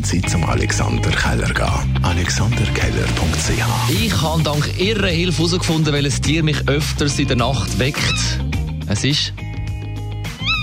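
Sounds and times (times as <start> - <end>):
speech: 0.0 - 9.4
tawny owl calling with a shrill wavering screech: 7.9 - 8.4, 10.3 - 10.6.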